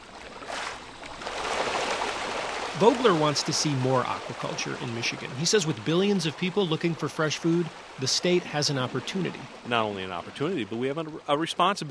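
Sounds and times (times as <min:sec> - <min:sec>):
rainbow trout in Michigan splashing at surface while being hand-fed pellets: 0:00.2 - 0:05.2
speech: 0:02.8 - 0:11.8.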